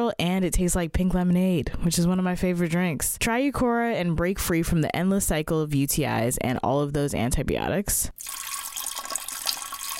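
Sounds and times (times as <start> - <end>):
speech: 0.0 - 8.4
person urinating in a steady stream: 8.2 - 9.9.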